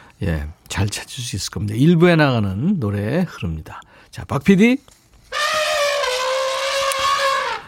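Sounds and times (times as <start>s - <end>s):
speech: 0.2s - 5.0s
angry elephant trumpeting: 5.3s - 7.6s.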